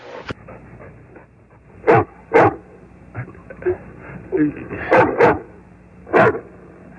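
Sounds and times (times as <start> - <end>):
dog barking: 1.8 - 2.6, 4.8 - 5.5, 6.1 - 6.5.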